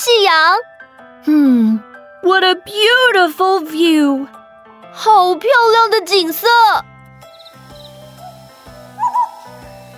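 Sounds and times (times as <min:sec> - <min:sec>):
speech: 0:00.1 - 0:04.4, 0:05.0 - 0:06.9
owl hooting: 0:07.3 - 0:09.9.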